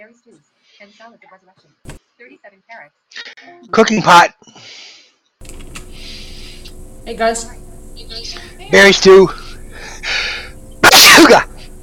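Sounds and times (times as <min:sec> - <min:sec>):
speech: 0:00.0 - 0:05.0, 0:07.1 - 0:09.4, 0:11.2 - 0:11.5
loud sneeze: 0:10.8 - 0:11.5.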